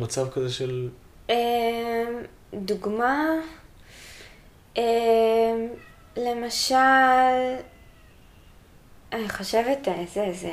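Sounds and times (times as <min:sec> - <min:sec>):
speech: 0:00.0 - 0:03.6, 0:04.8 - 0:07.7, 0:09.1 - 0:10.5
pet cat meowing: 0:05.3 - 0:08.7.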